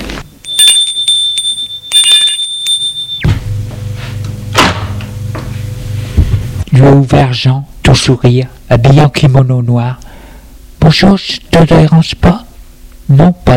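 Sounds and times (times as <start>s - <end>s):
doorbell ringing with a high electronic tone: 0.3s - 3.5s
speech: 7.0s - 10.0s, 10.9s - 12.4s, 13.1s - 13.5s.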